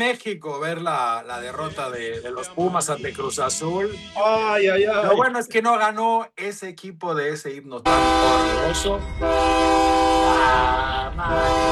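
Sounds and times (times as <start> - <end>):
speech: 0.0 - 11.7
low rail rumble of a departing train: 7.9 - 11.7
train horn as a train departs: 7.9 - 11.7.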